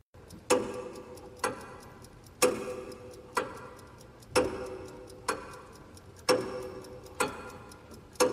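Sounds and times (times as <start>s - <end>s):
clock ticking in an election campaign ad: 0.2s - 8.3s.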